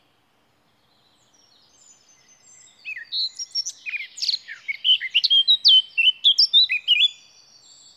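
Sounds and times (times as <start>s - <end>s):
Eurasian blackcap singing: 2.6s - 7.2s.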